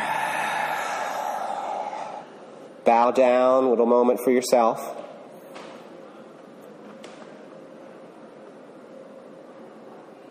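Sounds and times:
many people exhaling together during group practice: 0.0s - 2.4s
speech: 2.8s - 5.0s.

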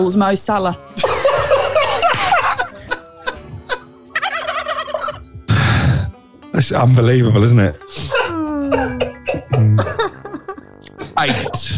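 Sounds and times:
speech: 0.0s - 1.1s, 6.6s - 9.1s, 11.2s - 11.7s
laughter: 1.0s - 5.4s, 8.8s - 11.7s
turkey gobbling: 4.2s - 5.2s.

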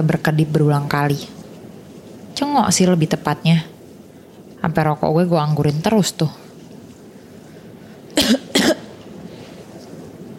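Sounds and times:
speech: 0.0s - 1.4s, 2.4s - 3.7s, 4.6s - 6.4s
person coughing: 8.2s - 8.9s.

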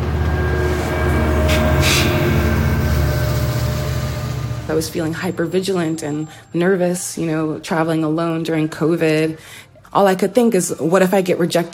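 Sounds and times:
passenger train rumbling in motion heard from on board: 0.0s - 6.0s
speech: 4.7s - 11.7s.

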